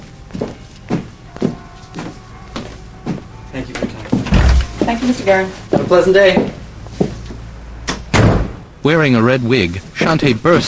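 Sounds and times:
footsteps crossing a room: 0.0 - 7.5
French doors swinging shut: 4.1 - 4.9
speech: 5.0 - 6.6, 8.8 - 10.6.

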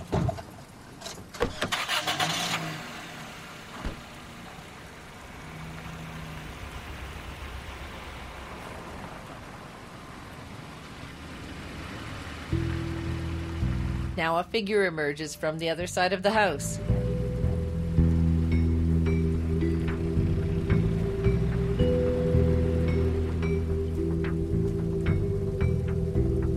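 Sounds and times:
car engine starting and idling while pulling out of a driveway: 0.0 - 26.5
car door thudding: 1.2 - 1.8, 3.8 - 4.2
speech: 14.2 - 16.9.

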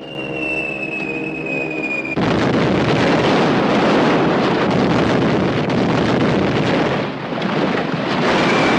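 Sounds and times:
falling whistle of bombs: 0.0 - 2.2, 8.4 - 8.7
droning aircraft engine: 0.0 - 8.7
rumbling bomb explosions: 0.0 - 8.7.

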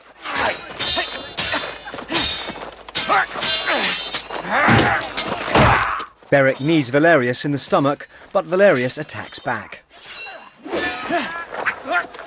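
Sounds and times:
swords clashing in sweeping strokes during a fight: 0.2 - 6.0, 8.8 - 12.2
speech: 6.3 - 9.8.

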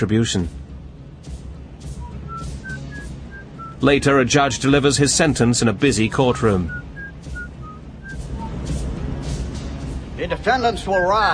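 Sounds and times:
speech: 0.0 - 0.7, 3.8 - 6.9, 10.2 - 11.3
man whistling a tune in a moving car: 2.0 - 3.8, 6.2 - 8.6.

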